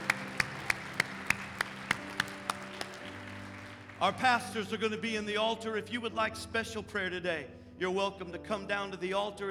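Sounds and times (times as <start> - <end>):
audience clapping in praise: 0.0 - 4.8
speech: 4.0 - 9.4.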